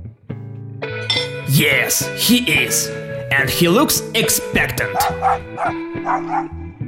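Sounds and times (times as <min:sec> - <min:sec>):
speech: 0:01.5 - 0:06.6
dog barking with whiny barks: 0:04.9 - 0:06.6.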